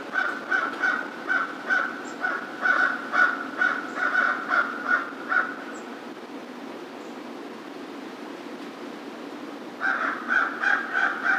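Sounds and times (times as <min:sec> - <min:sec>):
American crow cawing: 0:00.1 - 0:05.7, 0:09.8 - 0:11.3.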